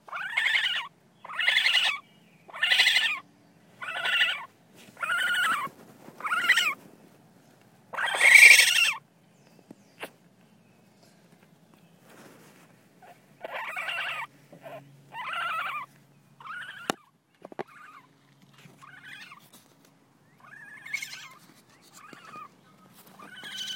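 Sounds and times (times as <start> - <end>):
baby raccoon calls: 0.0 - 3.2, 3.8 - 6.8, 7.9 - 9.1, 13.0 - 19.6, 20.3 - 23.7.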